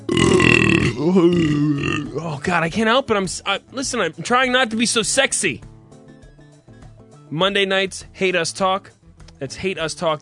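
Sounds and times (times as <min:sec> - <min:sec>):
loud drawn-out voiced burp: 0:00.0 - 0:02.2
speech: 0:01.1 - 0:01.5, 0:02.2 - 0:05.7, 0:07.3 - 0:10.1.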